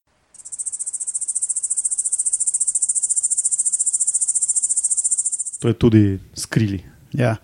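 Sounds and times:
great green bush-cricket stridulating: 0:00.2 - 0:05.6
speech: 0:05.6 - 0:07.4.

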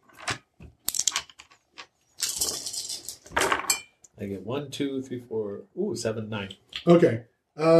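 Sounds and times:
handful of dice rattling across a hard surface: 0:00.1 - 0:03.7
speech: 0:04.2 - 0:07.7.

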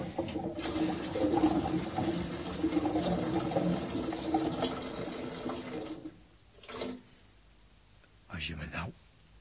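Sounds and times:
water running into a screw-top metal bottle of about three litres: 0:00.0 - 0:07.0.

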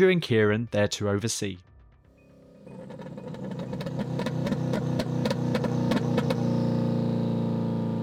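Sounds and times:
speech: 0:00.0 - 0:01.7
old car engine cranking, spluttering and starting: 0:02.2 - 0:08.0.

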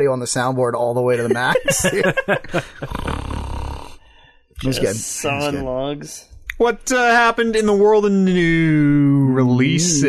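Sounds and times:
speech: 0:00.0 - 0:03.0, 0:04.6 - 0:10.0
laughter: 0:01.2 - 0:03.2
raspy snore recorded with a lavalier microphone: 0:02.8 - 0:04.1.

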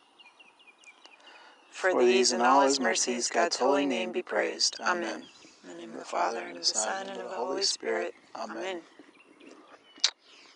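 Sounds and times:
birds chirping faintly: 0:00.0 - 0:10.5
speech: 0:01.8 - 0:05.4, 0:06.0 - 0:09.0.

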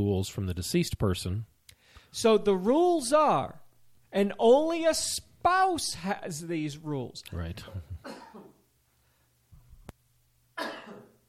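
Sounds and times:
speech: 0:00.0 - 0:01.5, 0:02.1 - 0:08.2
low throat-clearing rumble: 0:07.6 - 0:08.6, 0:10.6 - 0:11.2
person coughing: 0:07.6 - 0:08.6, 0:10.6 - 0:11.2.

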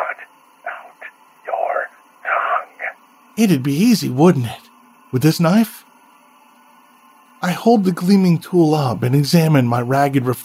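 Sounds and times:
thin band-limited radio static bursts: 0:00.0 - 0:03.5
faint steady hiss: 0:00.0 - 0:10.4
speech: 0:03.4 - 0:05.8, 0:07.6 - 0:10.4.

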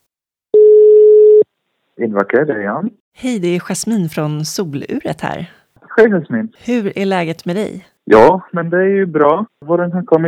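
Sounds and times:
telephone ringback tone while placing a call: 0:00.6 - 0:01.4
speech: 0:02.0 - 0:10.2.

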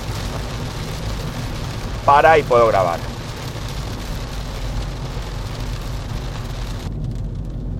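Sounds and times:
heavy rain: 0:00.0 - 0:07.7
speech: 0:02.1 - 0:03.1.

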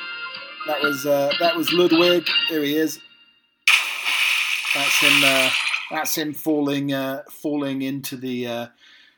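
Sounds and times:
speech: 0:00.7 - 0:03.1, 0:04.7 - 0:08.8
person falling into water with a loud splash: 0:03.7 - 0:06.0.

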